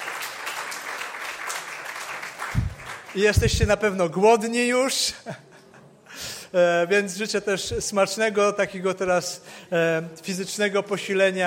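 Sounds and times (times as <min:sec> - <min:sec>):
church congregation applauding after a Sunday worship service: 0:00.0 - 0:03.4
speech: 0:03.1 - 0:05.5, 0:06.5 - 0:11.4.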